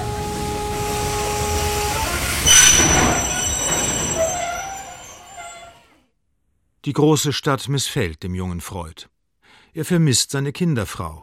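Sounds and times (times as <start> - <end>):
train rolling along the rails with a constant rumble: 0.0 - 5.8
train wheels giving off high-pitched metallic squeals: 2.0 - 5.9
speech: 6.8 - 9.1, 9.7 - 11.2.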